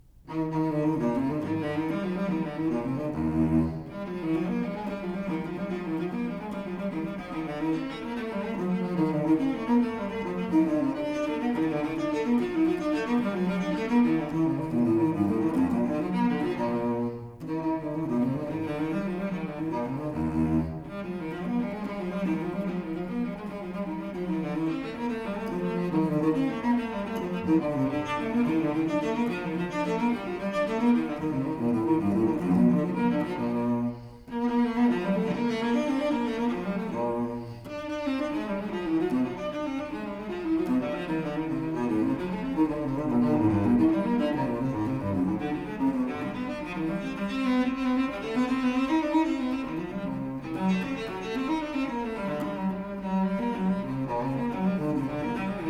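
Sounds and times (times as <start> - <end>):
solo cello piece in E flat major: 0.0 - 55.6.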